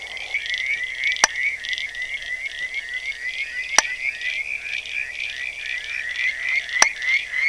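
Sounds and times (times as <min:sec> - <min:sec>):
Limnodynastes tasmaniensis calling: 0:00.0 - 0:07.4.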